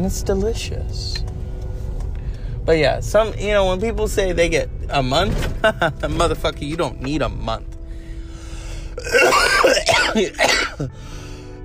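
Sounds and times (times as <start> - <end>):
speech: 0.0 - 1.3, 2.6 - 7.7, 10.1 - 11.2
harsh coughing: 9.0 - 11.0.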